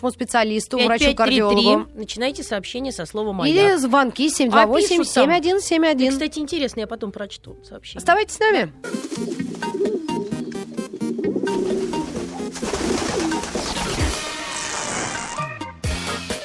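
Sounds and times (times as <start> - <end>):
speech: 0.0 - 9.4
busy music-like backdrop: 0.8 - 16.4
pigeons cooing: 8.9 - 14.1.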